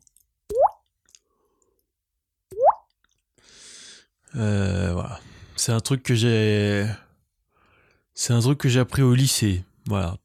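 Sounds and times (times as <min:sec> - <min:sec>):
cheek popping imitating a water drop: 0:02.5 - 0:02.9
speech: 0:04.3 - 0:05.0, 0:05.6 - 0:07.0, 0:08.2 - 0:10.2.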